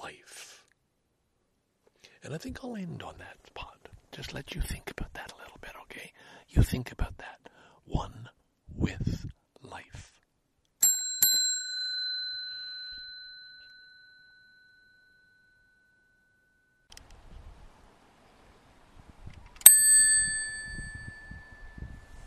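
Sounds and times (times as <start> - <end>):
speech: 2.2 - 3.6, 4.2 - 7.3, 7.9 - 10.1
bicycle bell ringing: 10.8 - 16.9, 19.6 - 22.2.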